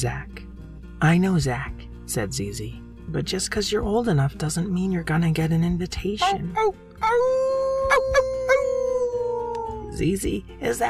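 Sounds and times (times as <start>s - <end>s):
speech: 0.0s - 0.4s, 1.0s - 8.6s, 10.0s - 10.8s
giant shaggy brown werewolf howling: 6.2s - 10.0s.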